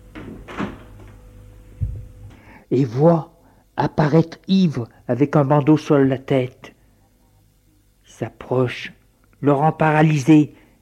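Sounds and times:
bedroom door creaking and rubbing open: 0:00.1 - 0:01.1
low thud of door against its frame: 0:00.2 - 0:00.9
speech: 0:02.7 - 0:06.8, 0:08.1 - 0:10.6.

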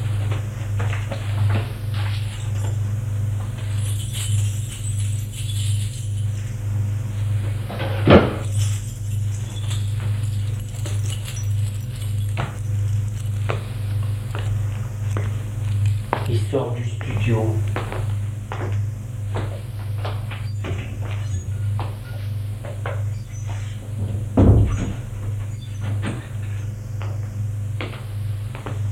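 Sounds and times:
steady low electrical hum: 0:00.0 - 0:28.8
wardrobe doors opening: 0:20.1 - 0:26.7
wooden clunks and rattles: 0:24.0 - 0:26.3.

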